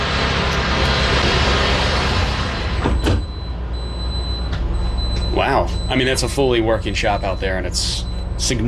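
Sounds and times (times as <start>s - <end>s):
futuristic vehicle's big sliding glass door rolling along its track and thudding shut: 0.0s - 3.5s
loud machinery hum on a manufacturing plant floor: 0.0s - 8.6s
speech: 6.0s - 8.6s.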